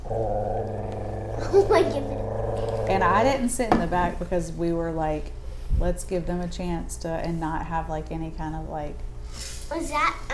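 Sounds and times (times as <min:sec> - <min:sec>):
voice imitating a low rumbling growl in the back of a car: 0:00.0 - 0:03.3
speech: 0:01.5 - 0:02.2, 0:02.9 - 0:10.3.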